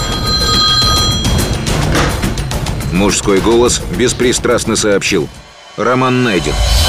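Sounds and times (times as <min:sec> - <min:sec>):
landline telephone ringing with a trilling bell: 0:00.0 - 0:01.8
speech: 0:03.0 - 0:06.8.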